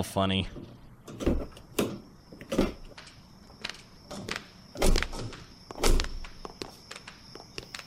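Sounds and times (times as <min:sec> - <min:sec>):
speech: 0:00.0 - 0:01.3
police squad car doors opening and shutting: 0:00.5 - 0:06.6.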